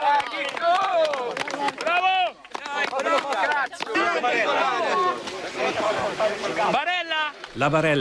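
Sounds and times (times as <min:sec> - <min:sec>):
rescue workers shouting and cheering: 0:00.0 - 0:07.5
speech: 0:07.6 - 0:07.9.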